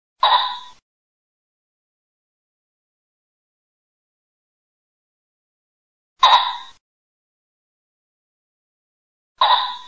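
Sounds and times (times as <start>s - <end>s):
pheasant: 0.2s - 0.8s, 6.2s - 6.8s, 9.4s - 9.8s.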